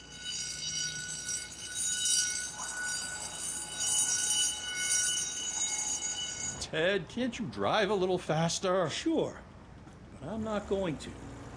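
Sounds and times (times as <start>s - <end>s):
shrill alarm bell ringing with metallic clatter: 0.0s - 6.7s
speech: 6.7s - 9.5s, 10.2s - 11.3s.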